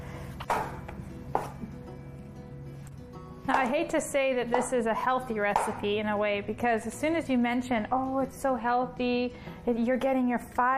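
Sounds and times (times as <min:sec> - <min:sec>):
knife chopping mushrooms on a cutting board: 0:00.4 - 0:01.7, 0:05.6 - 0:05.8
speech: 0:03.5 - 0:10.7.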